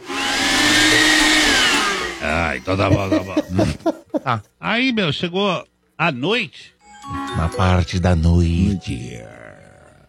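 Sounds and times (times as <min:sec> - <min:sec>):
blender whirring: 0:00.0 - 0:02.5
laughter: 0:02.2 - 0:04.5
speech: 0:02.6 - 0:09.4.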